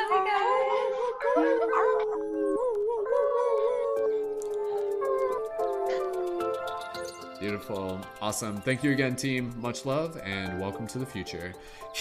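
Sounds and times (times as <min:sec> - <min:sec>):
group of people imitating wolf howls: 0:01.0 - 0:07.5
people whooping: 0:01.3 - 0:07.2
speech: 0:07.4 - 0:11.9.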